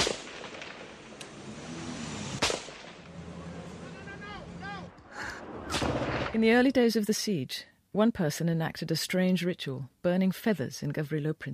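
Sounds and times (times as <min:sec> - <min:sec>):
gunfire as Bosnian forces return sniper fire on a main street: 0:00.0 - 0:01.3, 0:02.3 - 0:03.1, 0:05.4 - 0:06.5
loud sharp gunshot crack: 0:00.0 - 0:01.3, 0:02.3 - 0:03.1, 0:05.4 - 0:06.4
speech: 0:06.4 - 0:11.5.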